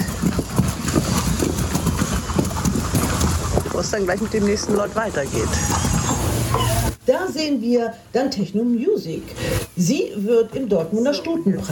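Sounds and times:
horse hooves clip-clopping at a walking pace: 0.0 - 7.0
speech: 3.8 - 5.9, 6.5 - 11.6.

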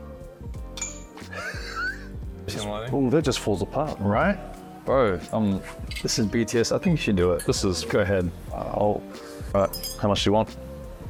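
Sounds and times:
glasses clinking together in a toast: 0.8 - 1.2, 5.9 - 6.3, 7.3 - 7.6, 9.6 - 10.1
laughter: 1.3 - 2.1
speech: 2.5 - 10.7.

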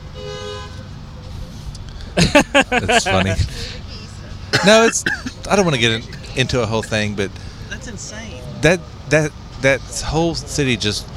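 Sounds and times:
car horn honking: 0.0 - 0.8
laughter: 2.2 - 3.8
speech: 2.3 - 3.8, 4.6 - 11.1.

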